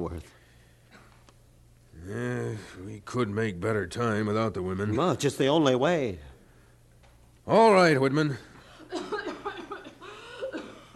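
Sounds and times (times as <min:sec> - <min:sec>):
speech: 0:02.1 - 0:06.3, 0:07.5 - 0:08.5
woman coughing: 0:08.8 - 0:10.9.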